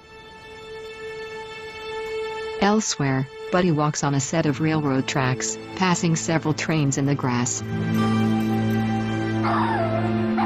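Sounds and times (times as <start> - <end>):
speech: 2.6 - 8.6, 9.5 - 10.2
dogs whimpering in kennel cages: 9.4 - 10.4.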